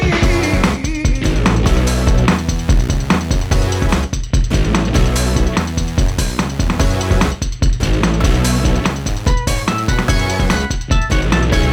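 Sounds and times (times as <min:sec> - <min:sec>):
bass drum: 0:00.2 - 0:11.7.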